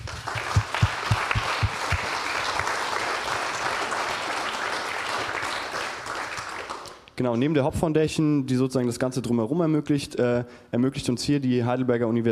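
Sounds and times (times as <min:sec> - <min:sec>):
audience applause: 0:00.0 - 0:07.0
speech: 0:07.2 - 0:12.3.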